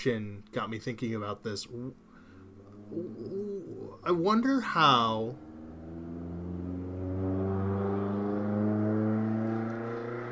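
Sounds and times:
speech: 0.0 - 2.1, 2.9 - 5.4
loud car engine revving as the car goes fast: 2.0 - 10.2.

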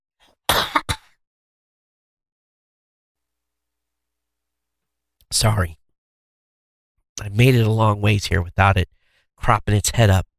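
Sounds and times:
person coughing: 0.5 - 1.2
speech: 5.3 - 5.8, 7.2 - 10.3
intake of breath: 9.0 - 9.3.

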